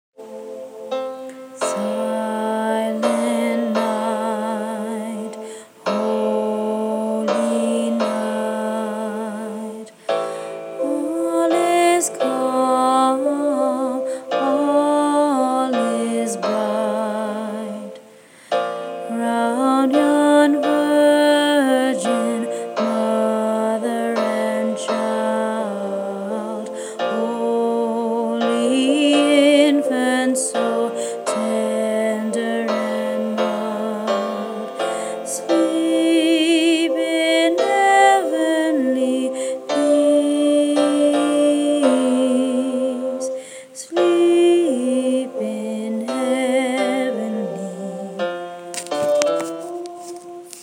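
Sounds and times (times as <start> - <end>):
tenor singing a carol: 0.3 - 18.2, 18.9 - 50.6.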